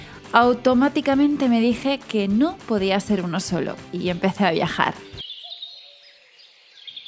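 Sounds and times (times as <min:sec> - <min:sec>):
speech: 0:00.3 - 0:05.2
faint birds chirping in the morning: 0:05.1 - 0:07.0.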